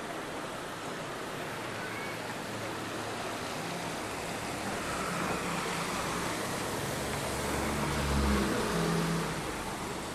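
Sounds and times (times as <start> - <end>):
steady traffic noise on a busy road: 0.0 - 10.1
Honda Accord car passing on a busy road: 3.4 - 10.1.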